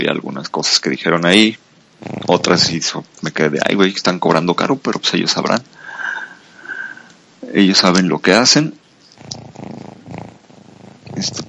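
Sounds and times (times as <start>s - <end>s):
speech: 0.4s - 5.7s, 7.5s - 9.3s, 11.2s - 11.4s
cat purring or snoring while asleep: 1.9s - 3.4s, 9.0s - 11.4s.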